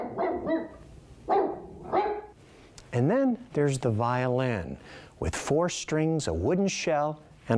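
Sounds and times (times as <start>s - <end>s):
dog barking: 0.0s - 2.4s
speech: 3.0s - 7.5s.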